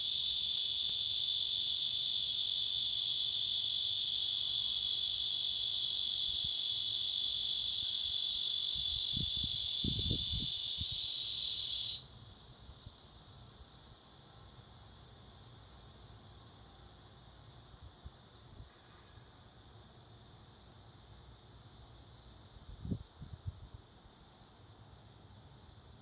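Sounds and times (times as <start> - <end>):
cicada buzzing: 0.0 - 12.1
faint hiss: 0.0 - 26.0.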